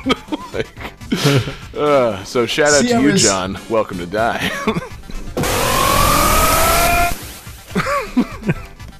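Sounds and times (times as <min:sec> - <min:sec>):
laughter: 0:00.0 - 0:01.6, 0:04.3 - 0:04.9, 0:07.7 - 0:08.7
speech: 0:00.0 - 0:04.9
gritty distorted arcade video game character roar: 0:05.4 - 0:07.2.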